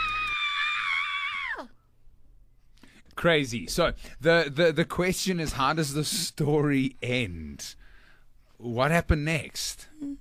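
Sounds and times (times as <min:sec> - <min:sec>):
loud high-pitched scream: 0:00.0 - 0:01.8
speech: 0:03.2 - 0:07.8, 0:08.6 - 0:10.1.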